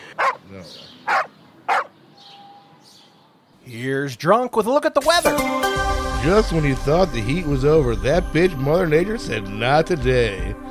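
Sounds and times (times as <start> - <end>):
dog barking: 0.2 - 0.4, 1.0 - 2.0
speech: 0.6 - 1.0, 3.7 - 10.6.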